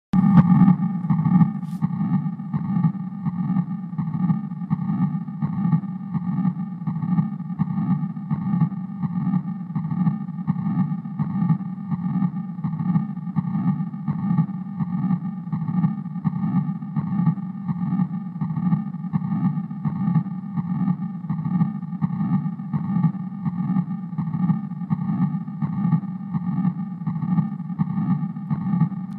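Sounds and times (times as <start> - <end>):
heart murmur from patent ductus arteriosus: 0.2 - 29.1.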